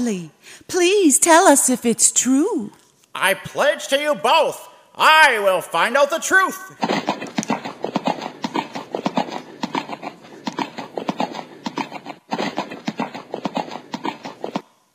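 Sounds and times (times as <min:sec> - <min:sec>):
speech: 0:00.0 - 0:07.1
horse hooves clip-clopping at a trot: 0:06.7 - 0:14.6.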